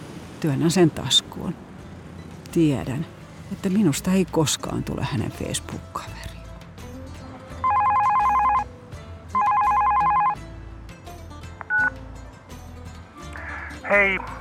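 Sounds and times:
speech: 0:00.4 - 0:01.7, 0:02.5 - 0:06.3, 0:13.9 - 0:14.3
telephone dialing tones and ringing: 0:07.6 - 0:08.6, 0:09.4 - 0:10.4, 0:11.6 - 0:11.9.

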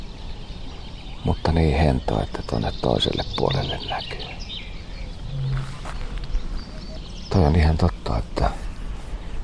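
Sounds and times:
quiet outdoor ambience at a lake in the early morning: 0:00.0 - 0:09.4
speech: 0:01.2 - 0:04.5, 0:07.4 - 0:08.6
Canada geese honking over a lake in the early morning: 0:05.2 - 0:07.1.

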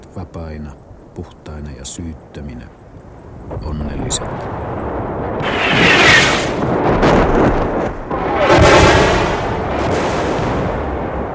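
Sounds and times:
speech: 0:00.2 - 0:02.8, 0:03.5 - 0:07.2
distant artillery fire rumbling through clear autumn air: 0:03.4 - 0:11.3.

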